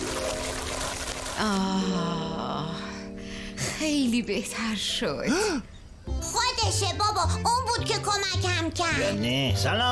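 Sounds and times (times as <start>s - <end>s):
coconut water being poured into a container: 0.0s - 1.4s
speech: 1.4s - 2.8s, 3.8s - 9.9s.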